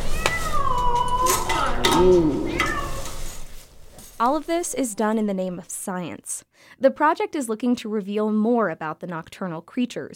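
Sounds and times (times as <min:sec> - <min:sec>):
unhappy trapped cat yowling: 0:00.0 - 0:03.2
speech: 0:02.0 - 0:02.4, 0:04.2 - 0:10.1.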